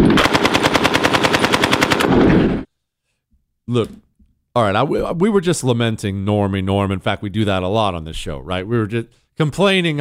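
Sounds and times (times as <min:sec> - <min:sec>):
rapid automatic gunfire: 0:00.0 - 0:02.7
speech: 0:03.7 - 0:09.9.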